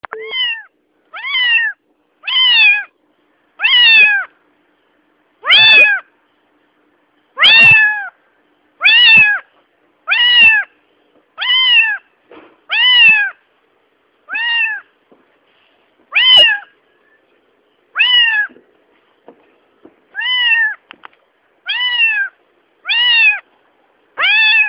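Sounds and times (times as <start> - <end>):
cat meowing loudly: 0.2 - 2.9, 3.6 - 4.3, 5.4 - 6.1, 7.4 - 8.1, 8.8 - 9.5, 10.1 - 10.7, 11.4 - 12.1, 12.7 - 13.4, 14.3 - 14.9, 16.1 - 16.7, 18.0 - 18.6, 20.1 - 20.8, 21.6 - 23.5, 24.2 - 24.6.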